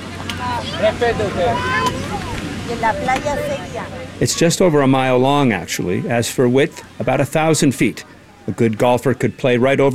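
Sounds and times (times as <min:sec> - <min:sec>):
low boat-engine rumble: 0:00.0 - 0:05.7
crowd chatter on a crowded island pier: 0:00.0 - 0:09.9
steady wind: 0:00.0 - 0:09.9
water noise: 0:00.0 - 0:09.9
speech: 0:00.5 - 0:02.0, 0:02.7 - 0:09.9.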